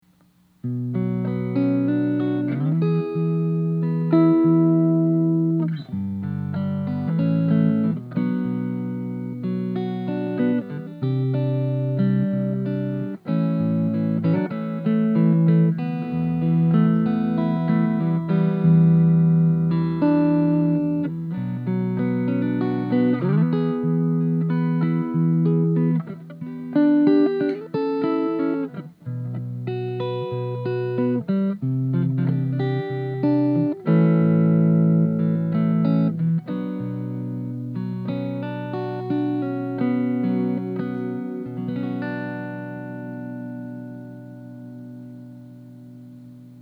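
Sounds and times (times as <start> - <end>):
clean fingerpicked solid body electric guitar on neck pickup: 0.0 - 46.6.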